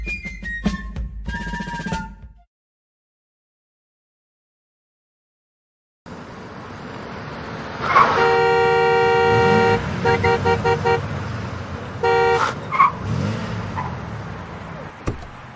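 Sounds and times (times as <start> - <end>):
steady rumble of traffic: 6.1 - 15.5
car horn honking in traffic: 7.9 - 11.1, 12.0 - 12.9.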